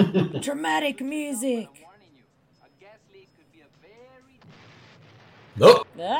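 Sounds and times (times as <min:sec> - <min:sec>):
speech: 0:00.0 - 0:01.9, 0:05.6 - 0:06.1
loud booming movie explosion: 0:04.4 - 0:06.1.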